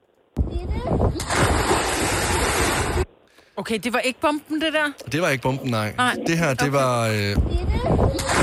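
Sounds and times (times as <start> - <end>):
churning splashing water: 1.0 - 3.2, 7.3 - 8.4
speech: 3.6 - 8.4.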